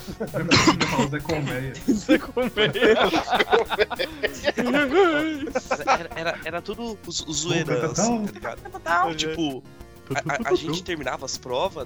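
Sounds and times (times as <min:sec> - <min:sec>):
laughter: 0:00.0 - 0:11.7
speech: 0:00.1 - 0:11.8
person coughing: 0:00.4 - 0:01.2.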